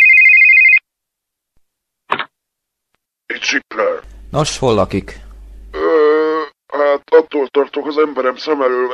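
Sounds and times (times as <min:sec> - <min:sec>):
telephone ringing with electronic trill: 0:00.0 - 0:00.8
speech: 0:03.4 - 0:05.2, 0:07.2 - 0:08.9.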